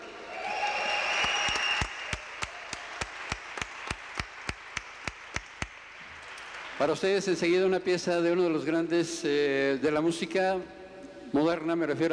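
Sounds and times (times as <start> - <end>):
crowd applauding a band's tenor saxophonist: 0.0 - 7.0
crowd clapping rhythmically in time: 1.2 - 7.1
speech: 6.8 - 12.1.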